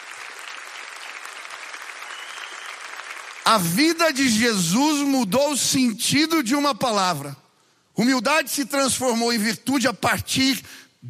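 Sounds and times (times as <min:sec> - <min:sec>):
crowd applauding: 0:00.0 - 0:04.2
speech: 0:03.5 - 0:07.4, 0:08.0 - 0:11.0.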